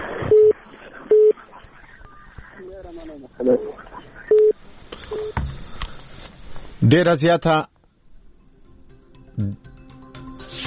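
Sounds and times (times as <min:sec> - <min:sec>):
faint noise: 0:00.0 - 0:10.0
telephone dialing tones: 0:00.3 - 0:01.3, 0:04.3 - 0:05.4
speech: 0:03.4 - 0:03.8, 0:06.8 - 0:07.7, 0:09.4 - 0:09.7.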